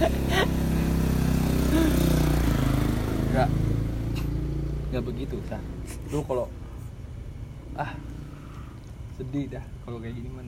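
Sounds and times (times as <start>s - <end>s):
motorcycle engine straining in fourth gear: 0.0s - 6.1s
speech: 3.4s - 3.7s, 4.9s - 6.6s, 7.8s - 8.2s, 9.2s - 10.4s.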